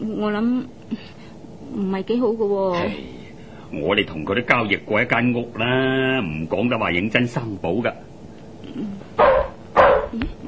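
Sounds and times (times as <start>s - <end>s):
speech: 0.1s - 8.1s
dog barking at the door of a house: 9.2s - 10.2s.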